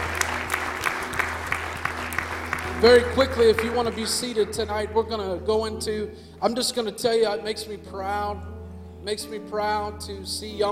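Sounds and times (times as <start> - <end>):
audience clapping hands: 0.0 - 4.8
speech: 2.8 - 10.7.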